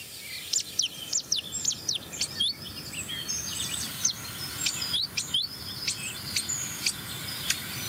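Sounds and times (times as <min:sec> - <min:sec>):
blackbird singing: 0:00.0 - 0:07.8
blackcap alarm calls: 0:00.0 - 0:07.8.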